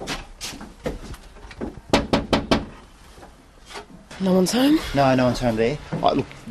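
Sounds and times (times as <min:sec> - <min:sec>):
knocking on a front door: 0:01.9 - 0:02.7
speech: 0:04.2 - 0:06.4.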